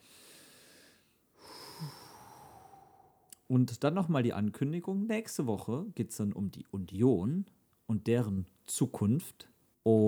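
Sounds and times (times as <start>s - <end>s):
long airy exhale with a faint whistling edge: 0.0s - 3.2s
deep breath in: 0.0s - 3.3s
speech: 3.5s - 10.0s.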